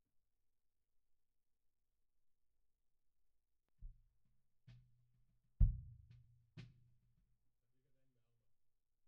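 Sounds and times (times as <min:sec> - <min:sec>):
kick drum: 0:05.6 - 0:06.9.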